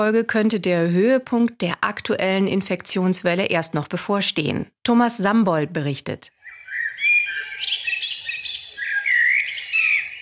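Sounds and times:
speech: 0:00.0 - 0:06.4, 0:07.6 - 0:07.8
common blackbird singing fluty warbling phrases: 0:06.4 - 0:10.2.

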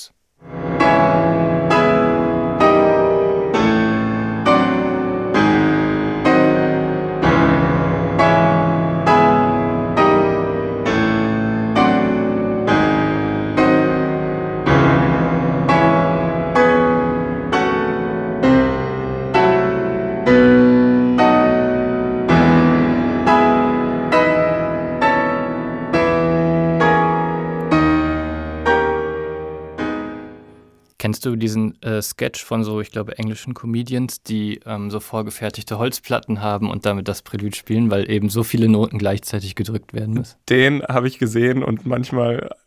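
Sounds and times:
heavy piano chords imitating bell strokes: 0:00.4 - 0:30.8
speech: 0:31.2 - 0:42.6.

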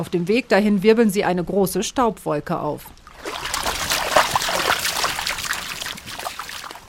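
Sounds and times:
speech: 0:00.0 - 0:03.5
shallow river water trickling and gurgling over stones: 0:03.0 - 0:06.8.

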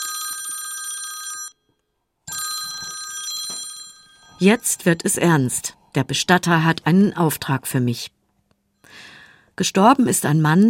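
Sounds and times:
telephone ringing with an incoming call: 0:00.0 - 0:05.4
speech: 0:04.4 - 0:08.2, 0:08.9 - 0:10.6.

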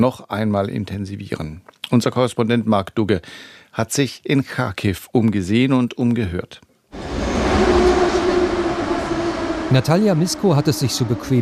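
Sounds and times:
speech: 0:00.0 - 0:06.7, 0:09.7 - 0:11.3
low mechanical drone in an underground metro station mezzanine: 0:07.0 - 0:11.3.

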